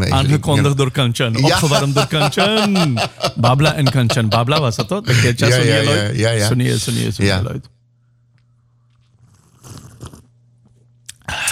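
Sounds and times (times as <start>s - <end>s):
low steady hum: 0.0s - 11.5s
speech: 0.1s - 7.8s
laughter: 1.4s - 6.0s
noisy slurping of hot coffee: 8.9s - 10.4s.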